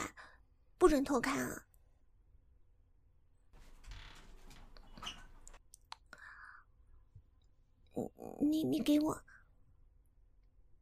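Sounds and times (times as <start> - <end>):
speech: 0.8 - 1.7, 8.0 - 9.3
door scraping open a little: 3.6 - 5.6.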